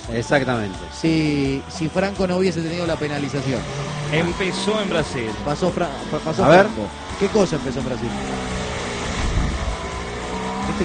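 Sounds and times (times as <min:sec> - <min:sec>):
racing car engines roaring: 0:00.0 - 0:10.8
speech: 0:00.1 - 0:08.6.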